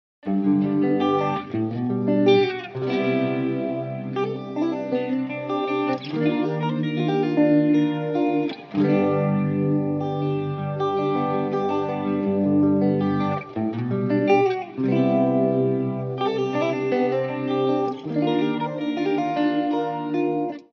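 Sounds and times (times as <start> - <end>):
guitar with wet swirling phaser effect: 0.2 - 20.7.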